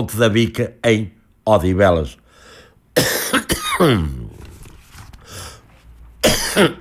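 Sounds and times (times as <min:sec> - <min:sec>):
speech: 0:00.0 - 0:02.2, 0:03.0 - 0:04.2, 0:06.2 - 0:06.7
harsh coughing fit with throaty wheeze: 0:03.0 - 0:04.3, 0:06.2 - 0:06.7.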